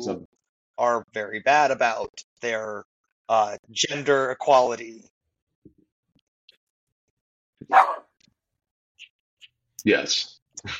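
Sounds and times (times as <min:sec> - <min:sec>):
speech: 0:00.0 - 0:05.1, 0:09.8 - 0:10.7
single sharp dog bark: 0:07.7 - 0:08.1.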